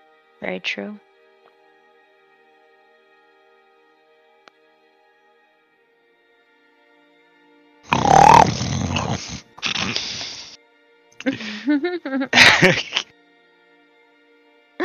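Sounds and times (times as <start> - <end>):
speech: 0.4 - 1.1, 11.2 - 13.1
rough grunting and snorting snores: 7.9 - 10.6
laughter: 11.2 - 13.0.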